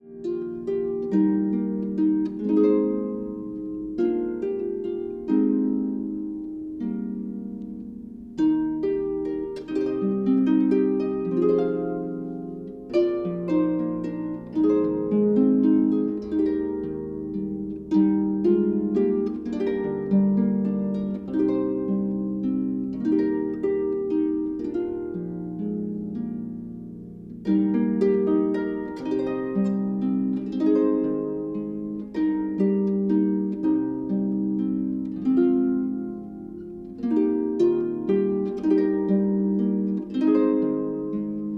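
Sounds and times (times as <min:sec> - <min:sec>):
harp playing: 0:00.0 - 0:41.5.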